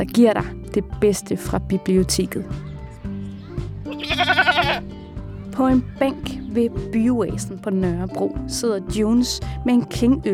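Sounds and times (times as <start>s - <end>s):
speech: 0.0s - 2.6s, 5.6s - 10.3s
lamb bleating in a fenced enclosure: 3.2s - 5.0s.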